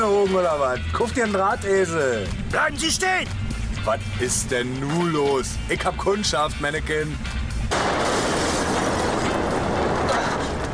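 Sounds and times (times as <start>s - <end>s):
speech: 0.2s - 7.9s
explosion: 7.7s - 10.7s
roaring wash of crackling and shattering debris: 7.7s - 10.7s.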